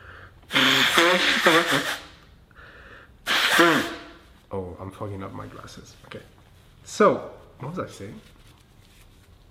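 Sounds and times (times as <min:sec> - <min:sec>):
nose blowing: 0:00.0 - 0:04.4
speech: 0:01.1 - 0:02.0, 0:03.6 - 0:08.4.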